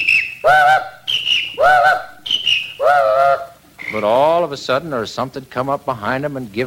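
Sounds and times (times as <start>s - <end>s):
two whistles trading high and low calls: 0.0s - 4.3s
speech: 3.9s - 6.6s.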